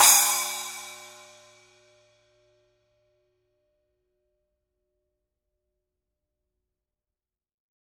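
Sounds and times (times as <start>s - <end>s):
10 inch rock splash cymbal hit on edge: 0.0s - 1.8s.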